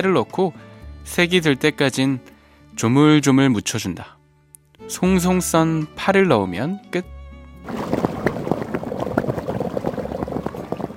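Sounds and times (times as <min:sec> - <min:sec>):
speech: 0:00.0 - 0:04.2, 0:04.8 - 0:07.8
beef and radish soup boiling in a pot: 0:07.6 - 0:10.9.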